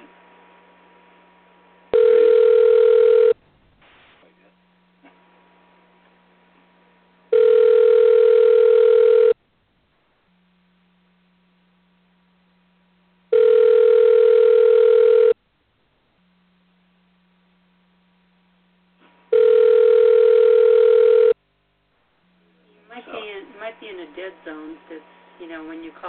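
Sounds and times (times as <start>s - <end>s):
telephone ringback tones: 2.0s - 3.4s, 7.3s - 9.4s, 13.3s - 15.4s, 19.3s - 21.4s.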